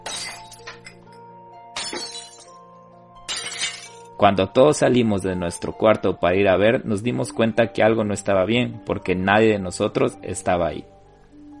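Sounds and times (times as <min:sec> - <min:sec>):
ringing, tinkling crystal shards: 0:00.0 - 0:01.1, 0:03.3 - 0:04.1
crystal glasses falling and shattering on a kitchen floor: 0:00.0 - 0:01.2, 0:01.8 - 0:02.6, 0:03.2 - 0:04.2
speech: 0:04.2 - 0:11.0.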